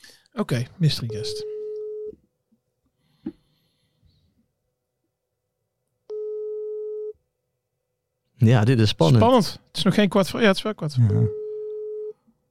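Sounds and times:
speech: 0.4 - 1.5, 8.4 - 11.4
ringback tone of an unanswered outgoing phone call: 1.2 - 2.1, 6.1 - 7.2, 11.1 - 12.2.

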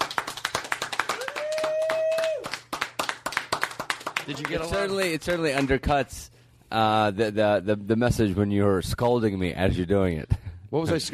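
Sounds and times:
applause at a radio show: 0.0 - 5.8
speech: 4.3 - 11.1.

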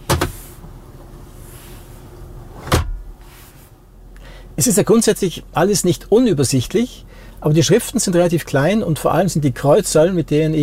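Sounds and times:
car glovebox opening electrically, triggered from the dashboard display: 0.0 - 0.4
speech: 4.6 - 10.6.

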